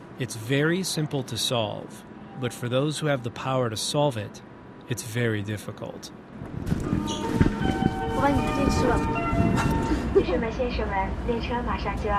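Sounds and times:
voice announcement in a bullet train carriage: 0.2 - 6.1, 8.1 - 9.1
speech: 0.2 - 12.1
steady rumbling bullet train cabin noise: 6.4 - 10.6
electronic door closing chime inside a bullet train carriage: 6.8 - 10.0.

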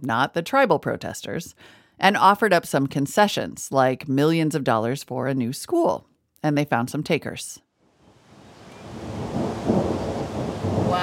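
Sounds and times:
speech: 0.0 - 7.6
deep rumble of thunder: 8.0 - 11.0
hail pounding outdoors in Orvada: 8.8 - 11.0.

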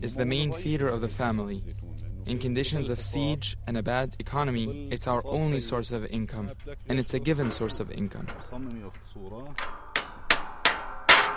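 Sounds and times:
speech: 0.0 - 9.8
hammer clanging on a busted metal tractor part: 5.0 - 11.3.

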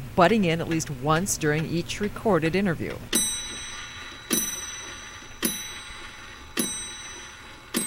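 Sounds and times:
speech: 0.2 - 3.2
antique pendulum clock chiming: 3.1 - 7.8.

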